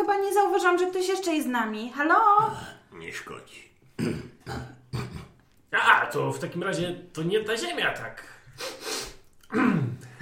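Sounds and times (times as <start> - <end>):
speech: 0.0 - 4.7, 5.7 - 8.9, 9.5 - 9.9
hissy nasal sniff: 8.5 - 9.4.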